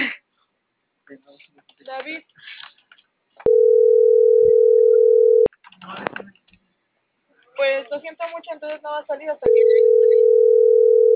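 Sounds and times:
speech: 1.1 - 2.6, 7.6 - 10.2
telephone busy tone while dialing: 3.5 - 5.5, 9.5 - 11.1.

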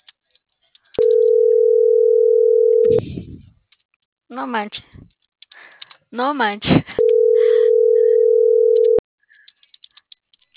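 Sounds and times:
loud steady telephone tone before voicemail: 1.0 - 3.0, 7.0 - 9.0
speech: 4.4 - 4.8, 6.1 - 6.9.

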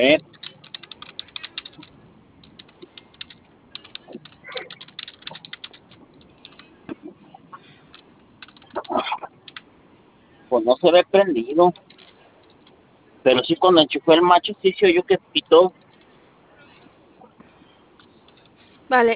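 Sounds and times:
speech: 0.0 - 0.3, 10.6 - 11.9, 13.2 - 15.8, 18.9 - 19.1
computer keyboard keys being pressed: 0.2 - 6.7, 7.9 - 9.7.

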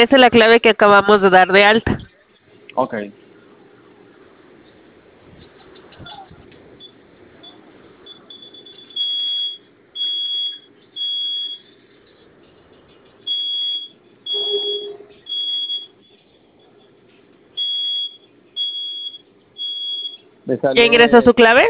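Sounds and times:
speech: 0.0 - 2.0, 2.8 - 3.2, 20.5 - 21.6
low hum: 0.0 - 21.6
security alarm panel siren sounding in shrill high-pitched pulses: 6.8 - 11.9, 13.2 - 16.8, 17.6 - 20.3.

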